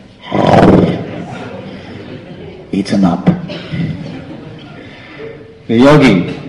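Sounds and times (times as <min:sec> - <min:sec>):
voice imitating a tiger roar: 0:00.2 - 0:01.0
laughter: 0:00.6 - 0:05.7
speech: 0:02.8 - 0:04.0, 0:05.7 - 0:06.4.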